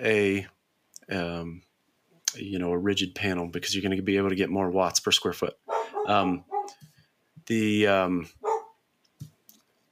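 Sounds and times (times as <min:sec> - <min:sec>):
speech: 0:00.0 - 0:01.7, 0:02.3 - 0:06.8, 0:07.5 - 0:08.4
dog barking: 0:05.7 - 0:06.8, 0:08.4 - 0:08.8.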